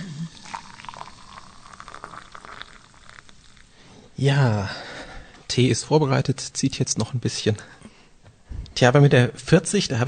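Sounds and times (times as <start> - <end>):
water boiling at a rolling bubble: 0.3 - 4.1
speech: 4.2 - 4.9, 5.6 - 7.8, 8.8 - 10.0.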